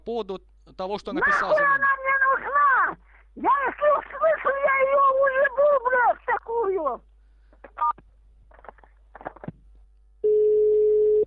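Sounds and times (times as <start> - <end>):
speech: 0.0 - 7.1
telephone busy tone after the receiver is hung up: 10.2 - 11.2.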